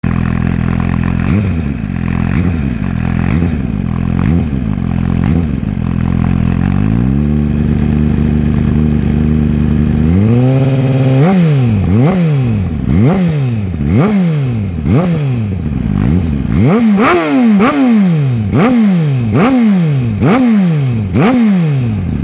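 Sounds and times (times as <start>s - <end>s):
GSX-R1000 V4-M motorcycle exhaust system: 0.0s - 22.2s.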